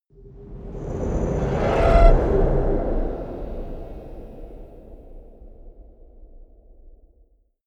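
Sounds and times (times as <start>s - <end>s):
rising whooshes: 0.4s - 4.8s
soft haunted shout: 0.8s - 4.3s.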